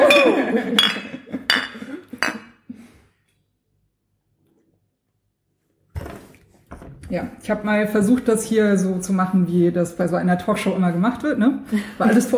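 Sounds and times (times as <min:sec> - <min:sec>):
laughter: 0:00.0 - 0:02.2
glasses clinking together in a toast: 0:00.0 - 0:02.5
speech: 0:07.1 - 0:12.3.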